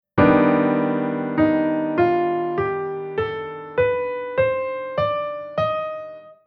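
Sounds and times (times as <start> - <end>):
melodic minor chord scale: 0.2 - 6.4.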